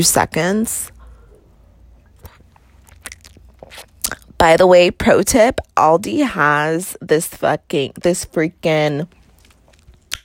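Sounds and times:
speech: 0.0 - 1.0, 4.4 - 9.2
quiet slurps of wine being sipped: 1.0 - 4.2.

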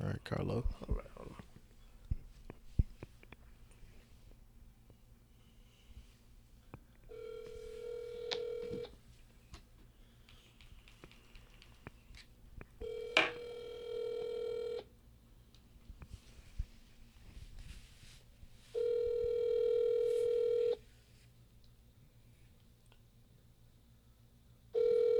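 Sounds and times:
faint hum: 0.0 - 25.1
speech: 0.2 - 1.0
outgoing phone call ringback tone: 7.1 - 8.9, 12.8 - 14.9, 18.8 - 20.8, 24.8 - 25.1.

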